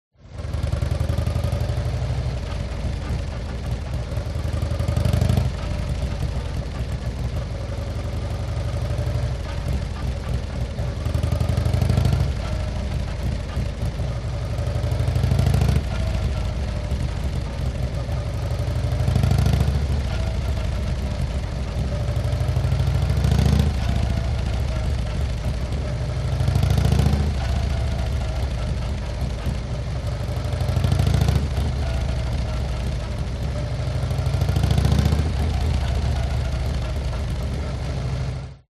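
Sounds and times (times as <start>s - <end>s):
Harley motorcycle accelerating in short bursts: 0.2s - 38.6s.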